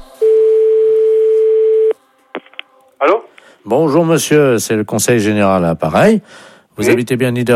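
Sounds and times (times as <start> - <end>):
telephone ringing tone: 0.2 - 2.0
telephone dialing tones from a call to a police station: 0.2 - 2.5
speech: 3.7 - 7.5.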